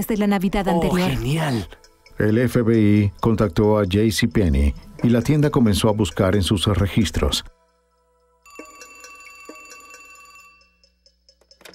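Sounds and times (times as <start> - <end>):
speech: 0.0 - 7.6
old-fashioned telephone bell ringing in a rapid metallic trill: 8.4 - 11.7.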